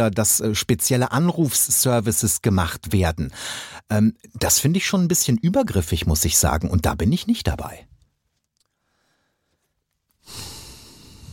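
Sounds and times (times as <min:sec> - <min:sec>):
speech: 0:00.0 - 0:07.9
heavy drawn-out puff of breath from a man: 0:10.2 - 0:11.3.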